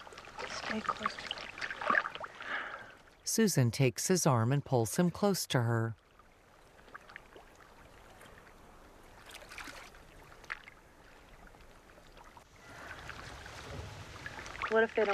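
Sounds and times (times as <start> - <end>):
ocean water lapping and sloshing around something drifting at sea: 0.0 - 3.3, 6.0 - 15.1
speech: 0.7 - 1.4, 3.3 - 6.0, 14.8 - 15.1.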